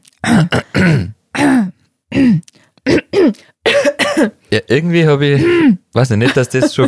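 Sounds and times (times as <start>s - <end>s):
person clearing throat with rasping grunts: 0.2s - 4.4s
speech: 4.7s - 6.8s.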